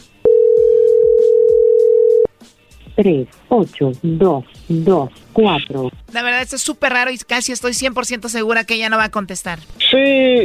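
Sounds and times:
telephone ringback tone on an unanswered call: 0.2 - 2.3
speech: 3.0 - 10.4.

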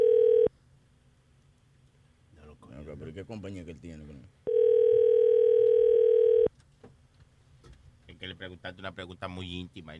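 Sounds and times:
telephone ringback tone on an unanswered call: 0.0 - 0.5, 4.5 - 6.5
speech: 3.0 - 4.4, 8.2 - 9.9.

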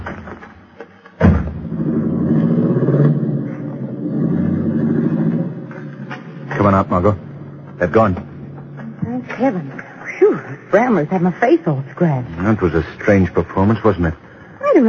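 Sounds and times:
car engine starting, revving and pulling away: 1.2 - 9.4
speech: 6.7 - 8.3, 9.4 - 9.8, 10.7 - 14.8.

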